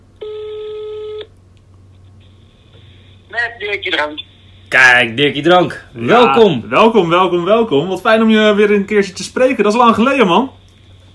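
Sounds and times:
low hum: 0.0 - 11.1
electronic ringback tone of an outgoing phone call: 0.2 - 1.3
speech: 3.6 - 10.6.

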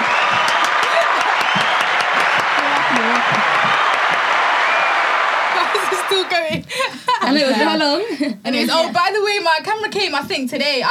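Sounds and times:
dense applause from many hands: 0.0 - 6.5
laughter: 0.0 - 8.3
speech: 6.4 - 10.9.

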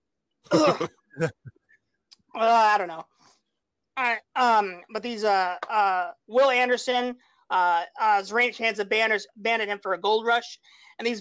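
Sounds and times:
throat clearing: 0.5 - 1.5
speech: 0.5 - 1.6, 2.4 - 3.1, 4.0 - 11.1.

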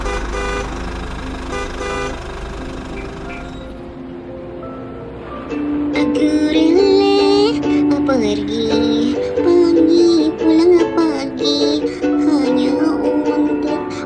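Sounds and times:
car horns honking in a Jakarta traffic jam: 0.0 - 3.9
rumble of idling traffic in a Jakarta traffic jam: 0.0 - 14.0.

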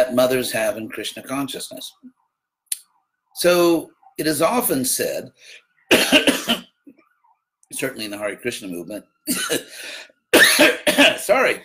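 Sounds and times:
speech: 0.0 - 2.2, 3.4 - 6.6, 7.7 - 11.6
woman coughing: 5.9 - 6.7, 9.3 - 9.7, 10.4 - 11.2.

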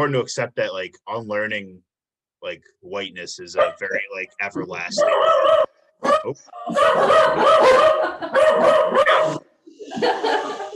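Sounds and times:
speech: 0.0 - 10.5
dog barking and yipping: 3.6 - 3.9, 4.9 - 9.4
laughter: 6.7 - 8.8, 9.7 - 10.7.

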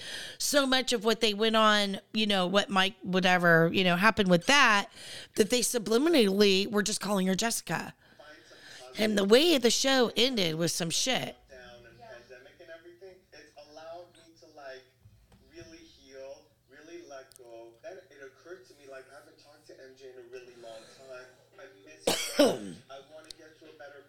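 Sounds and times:
speech: 0.5 - 8.0, 9.0 - 11.4
man clearing his throat: 22.1 - 22.9
man coughing harshly: 22.1 - 22.9.

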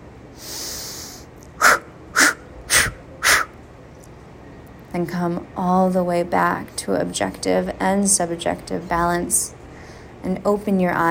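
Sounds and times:
deep vigorous breaths blown out during a meditation exercise: 0.4 - 3.6
speech: 5.0 - 9.6, 10.2 - 11.0.

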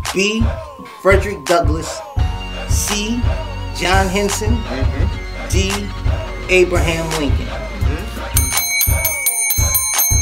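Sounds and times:
speech: 0.1 - 8.0
bell struck by quiz game players: 8.4 - 10.2.

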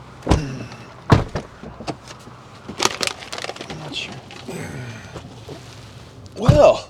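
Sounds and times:
car engine idling: 0.0 - 6.8
sharp clunks and thumps: 0.2 - 4.5, 6.4 - 6.8.

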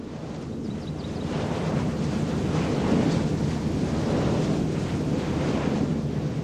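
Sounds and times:
wind turbine in a forest on a slope turning in gusty wind: 0.0 - 6.4.

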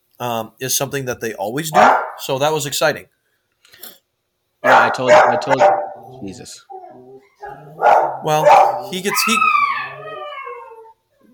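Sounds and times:
speech: 0.2 - 3.9, 4.9 - 6.7, 7.6 - 9.6
small dog giving a faint brief yelp: 1.8 - 2.2, 4.6 - 6.1, 6.7 - 10.9
small dog whining in a high-pitched wail: 6.1 - 7.8, 8.4 - 11.3.

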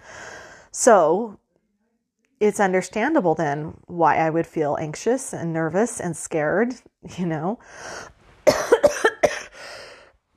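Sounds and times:
speech: 0.7 - 1.4, 2.4 - 9.1
person coughing: 8.5 - 9.6.

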